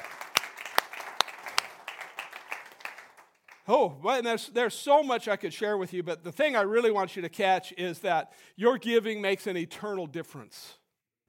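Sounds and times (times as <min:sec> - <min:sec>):
church audience cheering: 0:00.0 - 0:03.2
church audience applauding: 0:00.0 - 0:03.7
speech: 0:03.7 - 0:10.8.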